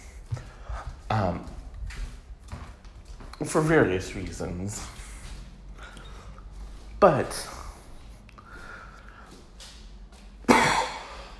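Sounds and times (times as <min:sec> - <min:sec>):
speech: 0:03.4 - 0:05.0, 0:07.0 - 0:07.6
cough: 0:10.5 - 0:11.3.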